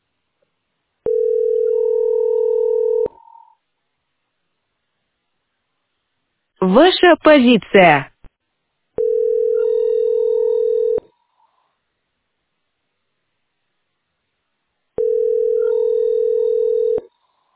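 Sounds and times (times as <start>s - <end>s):
telephone ringback tone: 1.0s - 3.2s, 9.0s - 11.0s, 15.0s - 17.1s
speech: 6.6s - 8.1s.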